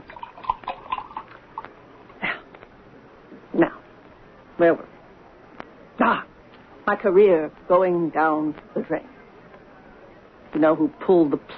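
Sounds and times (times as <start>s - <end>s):
drink poured into a small glass: 0.0s - 1.6s
speech: 4.6s - 4.9s, 6.9s - 9.1s, 10.6s - 11.5s.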